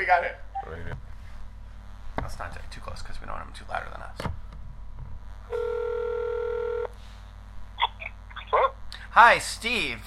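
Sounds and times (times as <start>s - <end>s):
speech: 0.1s - 0.9s, 2.3s - 4.4s, 5.5s - 6.0s, 8.5s - 10.0s
steady electronic telephone tone: 5.5s - 6.9s.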